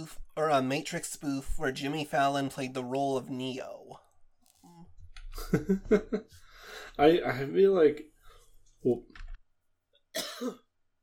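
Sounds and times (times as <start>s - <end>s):
speech: 0.1s - 4.0s, 5.4s - 8.1s, 8.8s - 9.2s, 10.4s - 10.6s
single sharp raspy cough: 10.1s - 10.7s.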